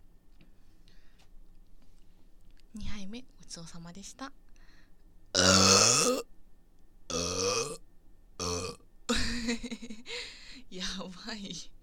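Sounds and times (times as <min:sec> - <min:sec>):
speech: 0:02.8 - 0:04.4, 0:10.8 - 0:11.8
person burping after finishing a meal: 0:05.4 - 0:06.3, 0:07.1 - 0:07.8, 0:08.4 - 0:08.8.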